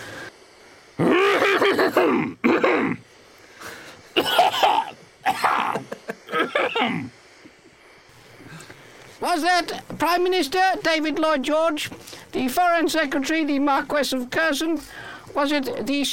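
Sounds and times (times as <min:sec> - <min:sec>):
person coughing in harsh, throaty fits: 0:01.1 - 0:03.0, 0:04.2 - 0:07.1
speech: 0:01.8 - 0:02.6, 0:09.2 - 0:16.1.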